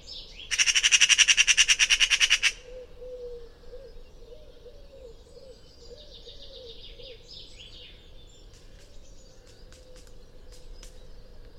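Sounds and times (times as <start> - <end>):
faint background hiss: 0.0 - 11.5
Eurasian magpie chattering: 0.5 - 2.6.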